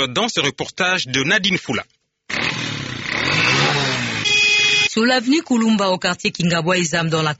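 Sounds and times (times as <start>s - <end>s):
speech: 0.0s - 2.0s, 5.0s - 7.3s
motorcycle taxi engine on a street in Kinshasa: 2.3s - 4.9s.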